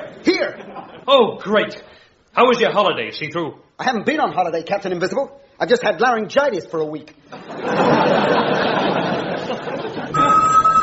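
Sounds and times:
speech: 0.2 - 9.0
crowd chuckling: 7.3 - 10.8.

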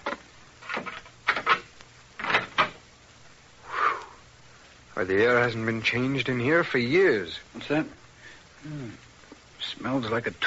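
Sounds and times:
old door creaking: 0.0 - 2.8
speech: 5.0 - 8.0, 8.6 - 9.0, 9.8 - 10.4.

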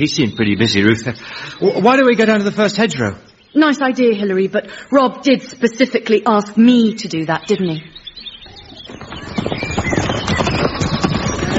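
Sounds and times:
speech: 0.0 - 7.9
hooves of a large ridden horse clip-clopping: 8.5 - 11.5.

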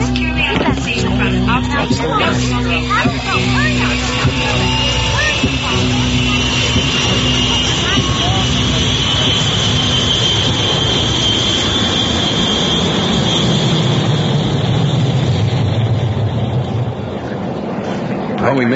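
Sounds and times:
passenger plane engines roaring during takeoff: 0.0 - 18.7
speech: 1.8 - 4.2, 18.5 - 18.7.

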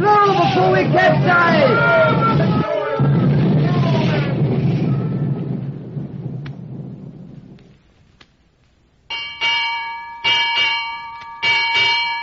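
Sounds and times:
speech: 0.0 - 1.9
stormy wind roaring: 0.0 - 8.5
thunder: 0.4 - 7.8
ship's bell striking six bells: 9.1 - 12.2.

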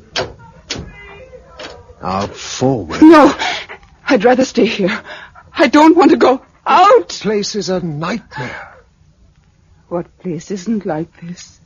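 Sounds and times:
door opening with solid clunks: 0.1 - 1.0
speech: 2.0 - 8.7, 9.9 - 11.6.

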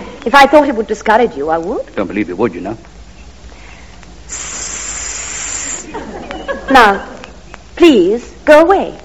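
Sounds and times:
speech: 0.2 - 2.9, 6.7 - 7.1, 7.8 - 9.0
swan-like high-pitched breathy hiss: 3.6 - 6.0.

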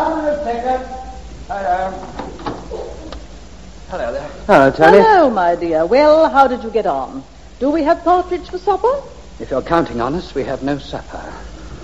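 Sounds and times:
speech: 0.5 - 2.2, 3.9 - 11.8
back door knocking and clunking as it swings shut and latches: 2.0 - 2.8.

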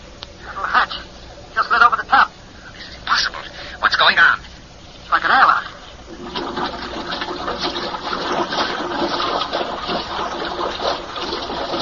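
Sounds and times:
faint mechanical hum: 0.0 - 11.8
water being pumped out of a chamber: 5.8 - 11.8.

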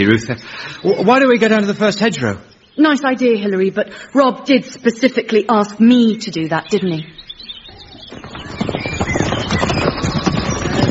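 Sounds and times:
speech: 0.0 - 7.2
very large ridden horse hooves clip-clopping: 7.7 - 10.9.

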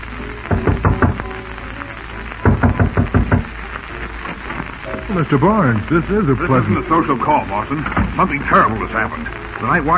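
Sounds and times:
rapid knocking on a door: 0.5 - 1.3, 2.4 - 3.5
speech: 5.1 - 9.9.

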